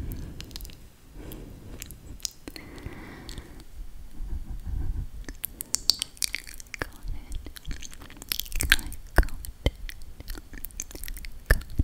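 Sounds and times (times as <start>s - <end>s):
ASMR wet mouth clicks, smacks and chewing-like noises: 0.0s - 11.8s
crisp snapping transients: 0.2s - 3.6s, 5.3s - 11.8s.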